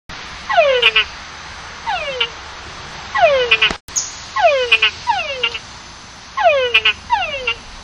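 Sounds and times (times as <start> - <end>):
tungara frog calling: 0.5 - 1.1, 1.9 - 2.4, 3.2 - 5.6, 6.4 - 7.7.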